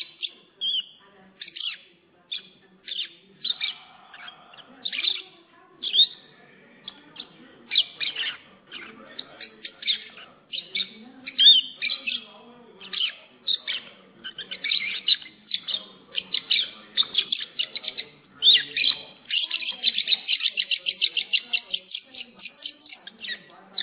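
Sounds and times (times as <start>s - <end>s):
lovebird chirping: 0.0s - 23.8s.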